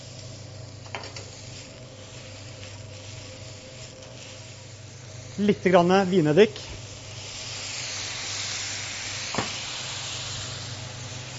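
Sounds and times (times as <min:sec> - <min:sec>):
onion and chanterelle mushrooms frying in a pan for a sauce: 0:00.0 - 0:11.3
speech: 0:05.4 - 0:06.8.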